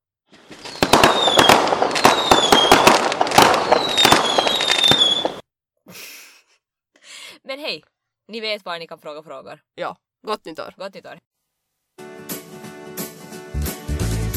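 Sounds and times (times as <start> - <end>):
New Year fireworks rockets crackling bangs: 0.3 - 5.4
speech: 7.6 - 11.3.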